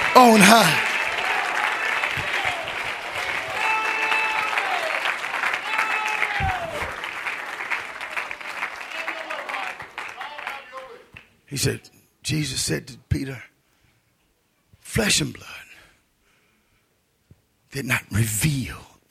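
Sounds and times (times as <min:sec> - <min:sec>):
sustained vocal tones: 0:00.0 - 0:00.9
voices calling out: 0:00.0 - 0:07.1, 0:08.6 - 0:11.2
audience clapping hands in praise: 0:00.0 - 0:11.3
speech: 0:00.2 - 0:00.8, 0:11.6 - 0:13.5, 0:14.9 - 0:15.7, 0:17.7 - 0:19.0.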